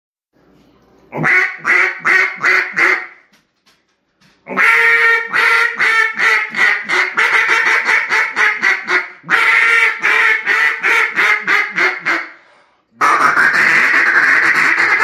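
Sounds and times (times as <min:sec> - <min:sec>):
speech: 0:01.1 - 0:01.4
duck quacking: 0:01.1 - 0:03.3, 0:04.5 - 0:12.4, 0:13.0 - 0:15.0.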